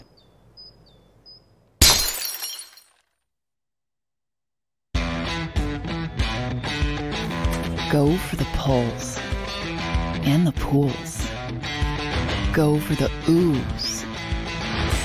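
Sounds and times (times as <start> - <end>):
glass bottle cracking as it is cut in half: 1.8 - 3.1
music: 5.0 - 15.0
speech: 7.9 - 9.3, 10.2 - 11.2, 12.5 - 14.0.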